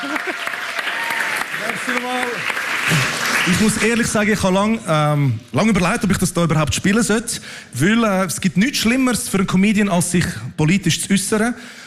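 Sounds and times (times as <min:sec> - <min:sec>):
voices whooping and calling out over the applause: 0:00.0 - 0:02.0
audience applauding a performer coming onto the stage: 0:00.0 - 0:04.4
speech: 0:01.8 - 0:11.8.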